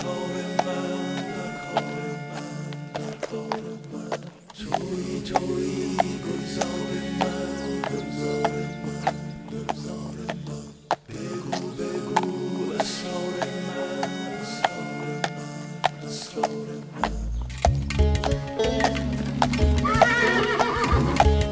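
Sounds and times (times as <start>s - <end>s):
sustained tonal backdrop: 0.0s - 20.5s
horse hooves clip-clopping: 0.0s - 21.5s
horse whinnying: 19.8s - 21.5s.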